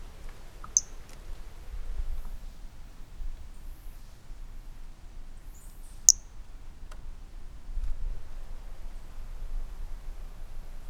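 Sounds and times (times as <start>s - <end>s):
low background hiss: 0.0s - 10.8s
Brachycephalus mirissimus toadlet high-pitched chirp-like note: 0.8s - 1.0s.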